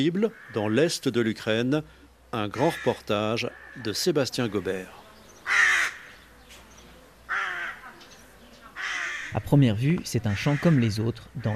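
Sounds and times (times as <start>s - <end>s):
speech: 0.0s - 5.0s, 9.3s - 11.5s
crows cawing: 0.2s - 0.9s, 2.5s - 6.3s, 7.3s - 9.5s, 10.3s - 11.5s.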